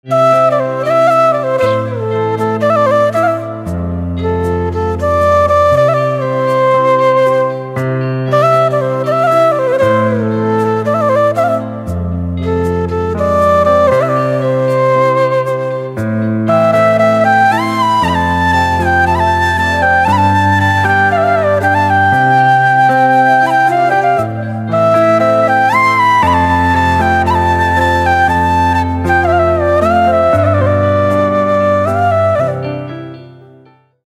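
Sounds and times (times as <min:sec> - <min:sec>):
flute instrumental ringtone: 0:00.0 - 0:34.0.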